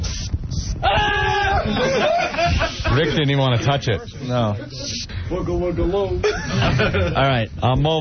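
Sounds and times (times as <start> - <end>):
hissing cockroach hissing: 0.0 - 0.8
laughter: 1.3 - 4.9, 6.2 - 7.4
speech: 1.7 - 8.0.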